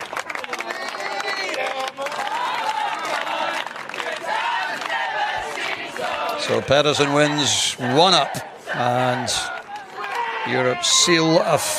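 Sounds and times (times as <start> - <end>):
crowd cheering: 0.0 - 11.7
large crowd of spectators singing together: 2.2 - 10.6
speech: 6.5 - 9.5, 10.4 - 11.7.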